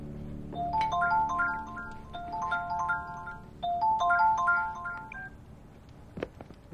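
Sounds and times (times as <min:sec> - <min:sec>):
melodic phone ringtone for an incoming call: 0:00.6 - 0:05.4.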